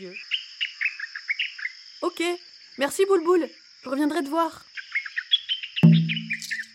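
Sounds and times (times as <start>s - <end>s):
speech: 0.0s - 0.3s, 2.0s - 4.7s
sudden knock: 5.8s - 6.5s
birds chirping: 5.8s - 6.7s.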